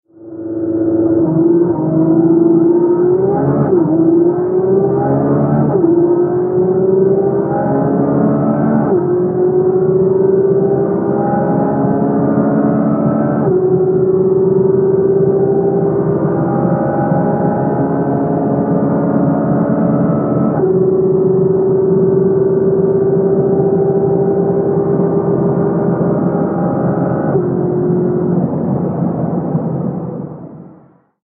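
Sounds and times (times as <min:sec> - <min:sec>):
engine running: 0:00.1 - 0:30.8.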